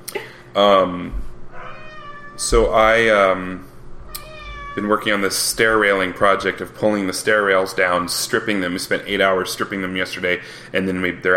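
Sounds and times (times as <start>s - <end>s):
speech: 0.6s - 1.2s, 2.4s - 3.7s, 4.8s - 11.3s
cat meowing: 1.5s - 2.6s, 4.1s - 5.0s.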